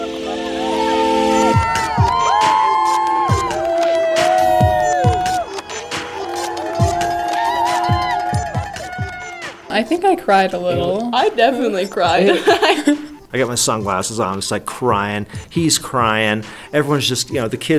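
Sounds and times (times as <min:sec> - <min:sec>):
packed crowd on a dock cheering and yelling at a race finish line: 0:00.0 - 0:09.8
speech: 0:09.8 - 0:17.7
laughter: 0:12.1 - 0:13.2.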